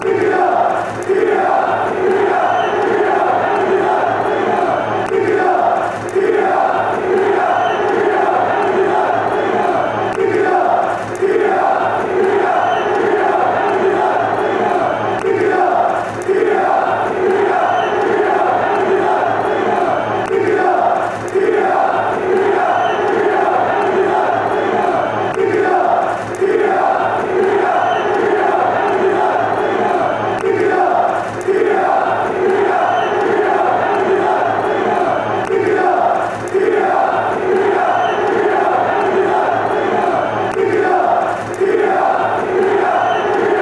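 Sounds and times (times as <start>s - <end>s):
football fans chanting: 0.0s - 43.5s.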